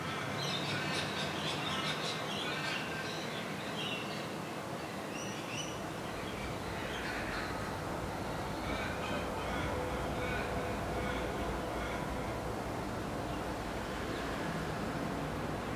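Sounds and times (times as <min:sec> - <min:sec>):
steady ambient noise: 0:00.0 - 0:15.7
many birds calling outdoors: 0:00.4 - 0:12.5.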